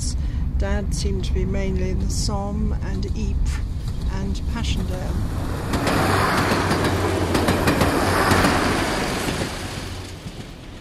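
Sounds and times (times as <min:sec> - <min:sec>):
train rolling along the rails near Ypres: 0:00.0 - 0:10.7
speech: 0:00.6 - 0:07.0
train wheels clickety-clack: 0:05.5 - 0:10.7.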